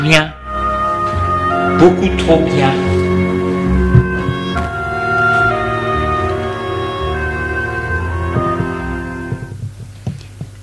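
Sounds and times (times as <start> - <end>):
speech: 0.0 - 0.4, 1.5 - 3.0
sustained dense musical drone: 0.0 - 9.6
sharp knocks on a door: 8.3 - 10.5.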